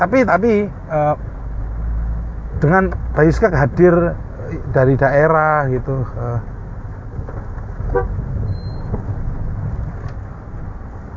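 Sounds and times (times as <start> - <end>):
speech: 0.0 - 1.3, 2.6 - 6.5
low rumble of road noise inside a moving vehicle: 0.0 - 11.1
car horn toot heard from inside a moving vehicle: 7.8 - 8.8.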